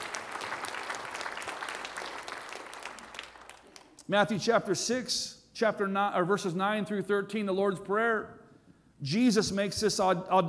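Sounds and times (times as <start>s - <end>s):
congregation applauding: 0.0s - 4.0s
speech: 4.1s - 8.4s, 9.0s - 10.4s.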